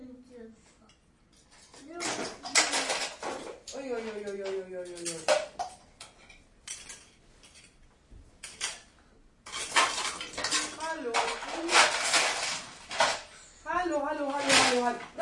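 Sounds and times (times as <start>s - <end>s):
people talking: 0.0s - 0.6s, 1.8s - 3.0s, 3.7s - 5.3s, 10.6s - 12.1s, 13.6s - 15.1s
small hard toy pieces being thrown and clattering: 1.8s - 5.8s, 9.5s - 13.4s, 14.1s - 15.1s.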